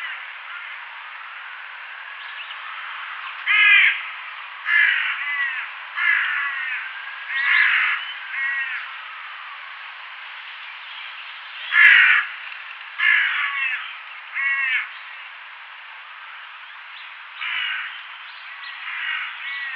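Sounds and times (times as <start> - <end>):
crow cawing: 0.0 - 0.8, 3.4 - 8.9, 11.7 - 12.4, 13.0 - 15.0, 17.4 - 18.0, 18.8 - 19.7
constant hiss: 0.0 - 19.7.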